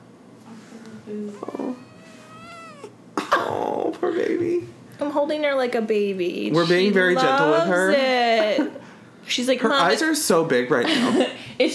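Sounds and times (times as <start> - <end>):
speech: 1.1 - 1.8, 4.0 - 11.7
cat squeaky cries while being held: 1.4 - 3.0.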